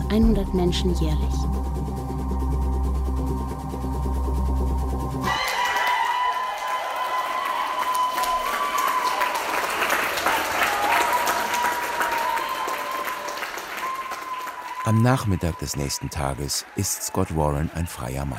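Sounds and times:
short low humming tone: 0:00.0 - 0:05.2
speech: 0:00.1 - 0:01.5, 0:14.9 - 0:18.3
crowd of supporters applauding and cheering: 0:05.2 - 0:18.3.

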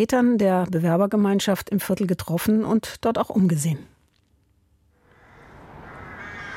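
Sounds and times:
speech: 0:00.0 - 0:03.9
crows cawing at their nests in plane trees: 0:05.0 - 0:06.5.

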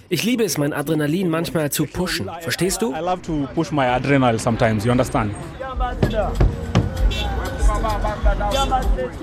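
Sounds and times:
busy city traffic: 0:00.0 - 0:09.2
road noise: 0:00.0 - 0:09.2
speech: 0:00.1 - 0:09.2
matatu minibus engine rumble in city traffic: 0:02.4 - 0:09.2.

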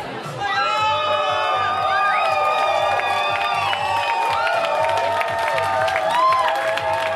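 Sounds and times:
large party crowd cheering and shouting: 0:00.0 - 0:07.1
scattered clapping: 0:02.1 - 0:07.1.

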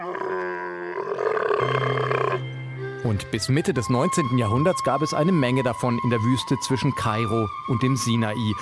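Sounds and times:
angry camel grumbling and roaring: 0:00.0 - 0:02.4
speech: 0:03.0 - 0:08.6.

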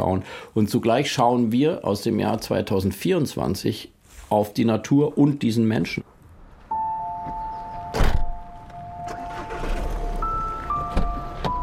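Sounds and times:
speech: 0:00.0 - 0:06.0
soft shuffling in a car interior: 0:06.6 - 0:11.6
steady car chime tone beeping: 0:06.7 - 0:11.6
car door thunking shut: 0:07.2 - 0:10.1, 0:10.7 - 0:11.6.

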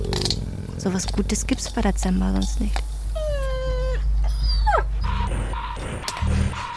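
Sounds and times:
speech: 0:00.8 - 0:02.9
dogs whimpering and yipping: 0:03.1 - 0:06.7.

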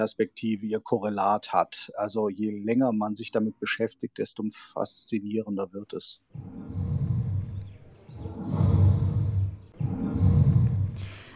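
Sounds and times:
speech: 0:00.0 - 0:06.9
dying elephant groaning calls: 0:06.4 - 0:11.3.

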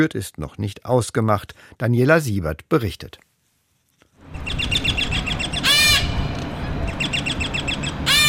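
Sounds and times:
speech: 0:00.0 - 0:03.3
low rumbling background: 0:04.3 - 0:08.2
chorus of various parakeet species chattering and chirping in an aviary: 0:04.4 - 0:08.2.

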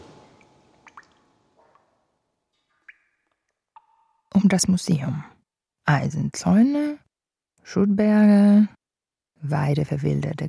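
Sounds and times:
water dripping from a leaky ceiling: 0:00.2 - 0:04.4
speech: 0:04.4 - 0:07.0, 0:07.6 - 0:08.8, 0:09.4 - 0:10.4.

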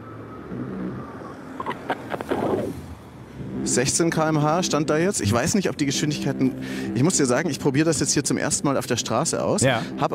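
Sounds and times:
taxi driving past on a street: 0:00.0 - 0:04.2
steady low traffic rumble: 0:00.0 - 0:10.1
wind: 0:00.0 - 0:10.1
speech: 0:03.7 - 0:10.1.

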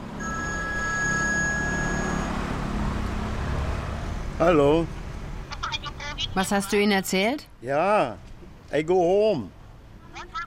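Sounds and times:
low rumble of engine and road noise: 0:00.0 - 0:10.4
mobile phone ringing with electronic tone: 0:00.2 - 0:02.7
speech: 0:04.4 - 0:05.0, 0:06.3 - 0:09.6.

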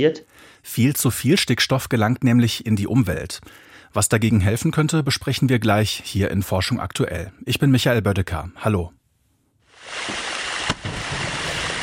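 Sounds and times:
speech: 0:00.0 - 0:09.0
meltwater from a glacier rushing: 0:09.8 - 0:11.8.

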